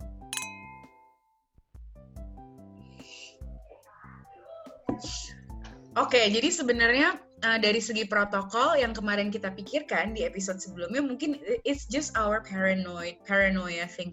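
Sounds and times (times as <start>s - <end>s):
glasses clinking together in a toast: 0.3s - 1.3s
people chatting: 3.7s - 14.1s
speech: 6.0s - 14.1s.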